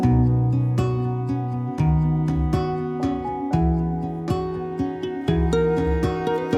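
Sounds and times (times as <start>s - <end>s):
march music: 0.2s - 6.5s.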